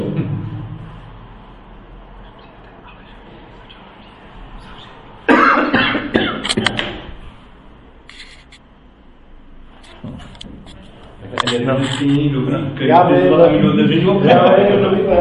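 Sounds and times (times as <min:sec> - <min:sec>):
quiet room hum: 0:00.0 - 0:15.1
loud harsh coughs with a roomy echo: 0:05.3 - 0:06.6
speech: 0:11.5 - 0:15.1.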